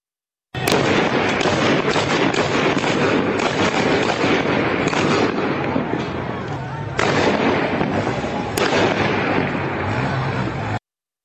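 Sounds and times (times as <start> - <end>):
dense rapid gunfire bursts in a street: 0.6 - 6.3, 6.9 - 10.4
faint voices: 4.4 - 10.8.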